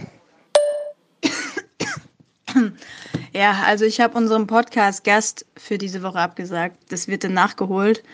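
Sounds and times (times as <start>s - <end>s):
person coughing: 1.2s - 2.1s
speech: 2.6s - 8.1s.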